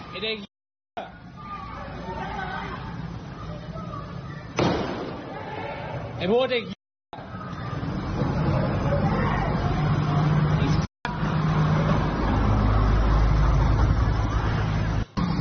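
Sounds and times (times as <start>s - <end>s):
road traffic with vehicles rumbling past on a street: 0.0s - 15.4s
speech: 0.2s - 1.1s, 6.2s - 7.2s
indistinct crowd chatter: 1.1s - 6.3s, 7.2s - 10.7s.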